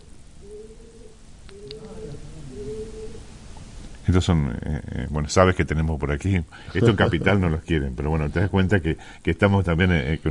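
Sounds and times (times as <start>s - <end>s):
pigeons cooing in the morning: 0.0s - 3.4s
steady hum: 0.0s - 10.3s
speech: 4.1s - 10.3s
laughter: 6.7s - 7.6s.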